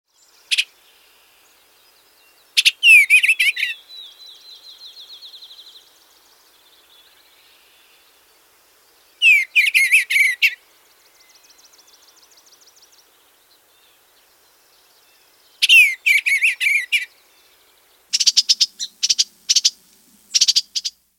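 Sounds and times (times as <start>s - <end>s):
eastern bluebird: 2.6s - 3.8s, 9.2s - 10.6s, 15.6s - 17.2s, 18.1s - 21.0s.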